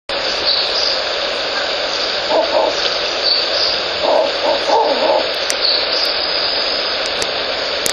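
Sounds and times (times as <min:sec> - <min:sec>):
steady loud hiss of background noise: 0:00.1 - 0:07.9
male Ural owl hooting: 0:00.5 - 0:06.1.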